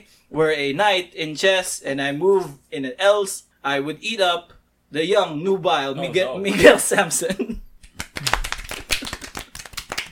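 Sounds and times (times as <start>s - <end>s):
speech: 0.1s - 7.6s
hand claps: 7.8s - 10.1s.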